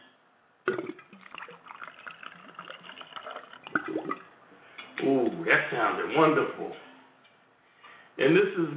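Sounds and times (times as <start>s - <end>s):
whisky pouring into a glass: 0.7s - 4.4s
speech: 5.5s - 6.8s, 8.2s - 8.7s.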